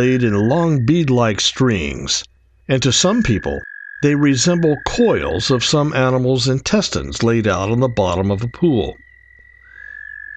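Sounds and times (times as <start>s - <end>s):
speech: 0.0s - 9.0s
faint low hum: 0.0s - 10.0s
American toad trill: 2.2s - 10.3s.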